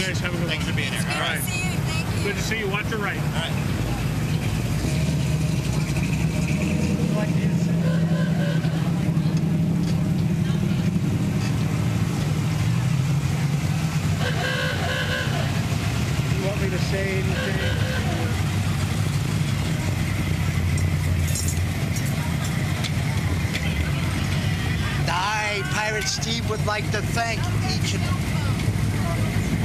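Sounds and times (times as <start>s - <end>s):
speech: 0.0s - 3.8s, 26.6s - 28.3s
voices: 0.0s - 4.8s, 6.9s - 29.6s
car engine idling at a car show: 0.0s - 29.6s
outdoor noise: 0.0s - 29.6s.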